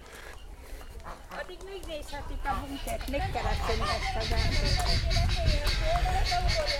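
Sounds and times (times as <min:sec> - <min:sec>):
several guineafowl calling harshly: 0:02.6 - 0:06.7.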